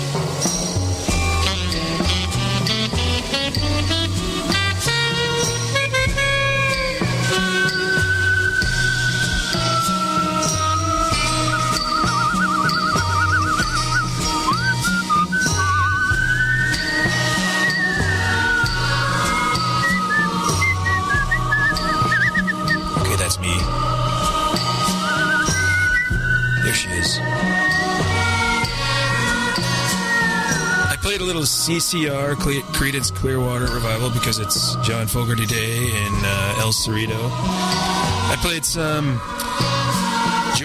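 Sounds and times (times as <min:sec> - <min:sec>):
band backing with a pulsing bass line: 0:00.0 - 0:40.6
person whistling a melody: 0:01.1 - 0:40.6
speech: 0:31.7 - 0:40.0.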